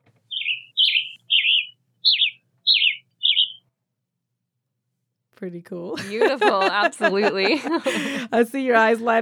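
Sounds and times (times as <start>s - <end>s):
western tanager singing burry phrases: 0.3s - 3.6s
speech: 5.4s - 9.2s
laughter: 6.0s - 8.4s.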